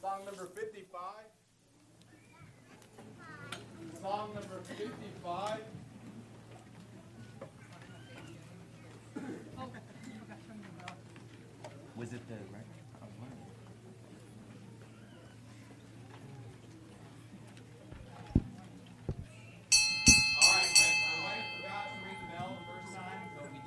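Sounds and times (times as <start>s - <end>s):
low murmuring voices: 1.6s - 23.6s
bell ringing in a church service: 19.7s - 23.6s.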